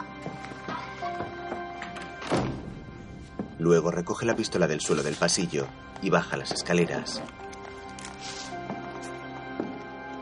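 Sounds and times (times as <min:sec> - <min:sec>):
music: 0:00.0 - 0:10.1
door shutting with a dull thunk: 0:01.8 - 0:02.8
speech: 0:03.6 - 0:07.5.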